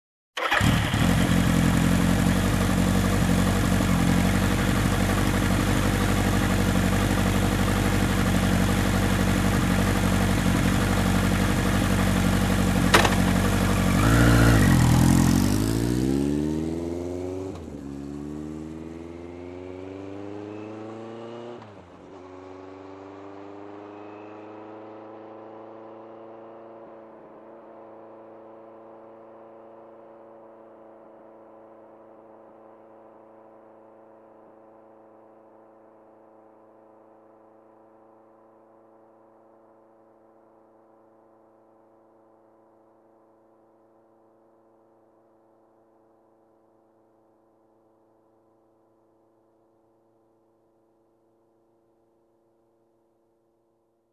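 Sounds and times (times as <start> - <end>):
motorcycle engine ignition: 0.4 - 19.2
motorcycle driving away: 0.4 - 31.9.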